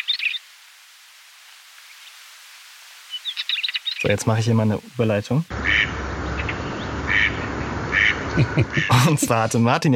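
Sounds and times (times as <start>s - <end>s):
steady hiss of noise: 0.0s - 9.9s
speech: 4.0s - 6.1s, 8.4s - 9.9s
duck quacking with short nasal calls: 5.5s - 9.1s
laughter: 8.3s - 9.7s.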